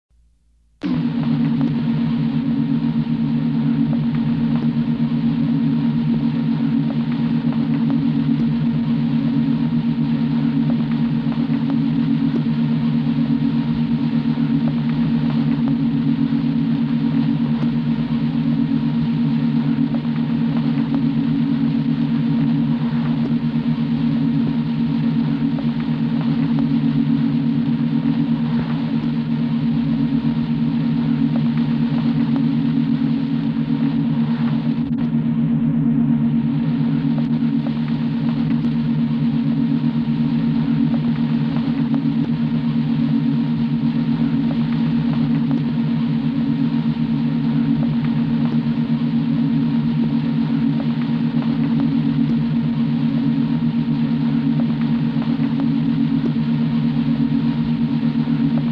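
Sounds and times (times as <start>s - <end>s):
corridor background ambience: 0.2s - 58.7s.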